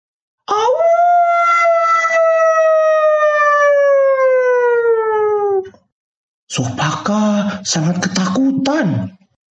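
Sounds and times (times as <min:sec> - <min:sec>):
wolf howling: 0:00.5 - 0:05.7
speech: 0:06.6 - 0:09.2.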